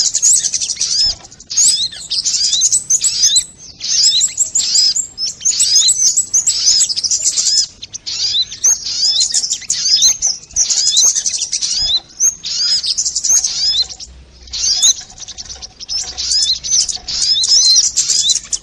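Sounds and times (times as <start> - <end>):
Crimson sunbird song: 0.0 - 18.6.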